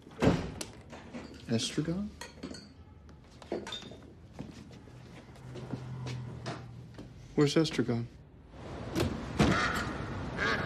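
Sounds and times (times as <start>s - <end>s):
steady noise: 0.0s - 10.6s
speech: 1.5s - 2.3s, 7.4s - 8.2s
duck quacking: 9.5s - 10.6s.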